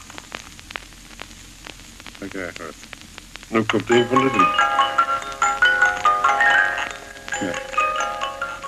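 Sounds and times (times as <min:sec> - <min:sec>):
speech: 0:02.2 - 0:05.0
small mechanical organ tune on an old recording: 0:03.7 - 0:08.6.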